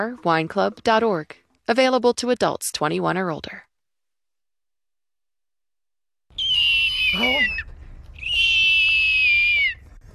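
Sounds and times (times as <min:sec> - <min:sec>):
speech: 0:00.0 - 0:03.7, 0:07.1 - 0:07.7
person from Falmouth imitating a hawk's cry: 0:06.4 - 0:09.8.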